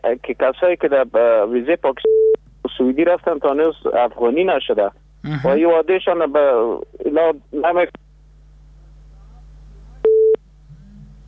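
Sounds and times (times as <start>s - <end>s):
speech: 0.0s - 2.2s, 2.8s - 8.0s
faint low hum: 0.0s - 11.2s
telephone busy tone beep after a dropped call: 2.0s - 2.4s, 10.1s - 10.4s.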